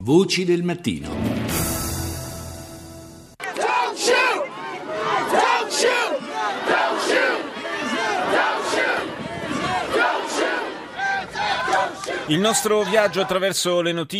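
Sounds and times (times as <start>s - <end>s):
speech: 0.0s - 1.7s, 12.3s - 14.1s
large street protest crowd chanting a slogan in unison: 3.4s - 13.5s.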